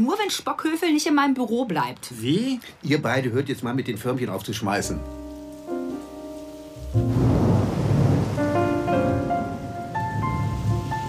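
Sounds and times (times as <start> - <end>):
speech: 0.0 - 5.2
rain falling at a harbour on a gloomy afternoon: 4.2 - 11.0
sustained musical tones: 4.9 - 11.0.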